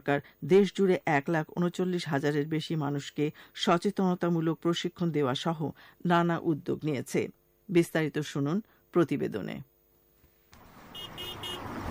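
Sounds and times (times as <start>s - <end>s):
speech: 0.0s - 9.7s
steady traffic rumble on a busy road in Dhaka: 10.6s - 11.9s
vehicle horns and hydraulic horns honking on a busy road in Dhaka: 10.8s - 11.9s.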